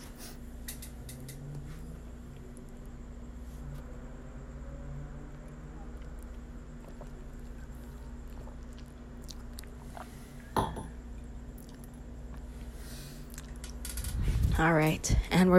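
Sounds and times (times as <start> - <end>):
steady electrical hum: 0.0 - 15.5
person sipping and swallowing a drink: 6.2 - 12.5
louder gulp or clink: 10.6 - 11.0
speech: 14.6 - 15.5.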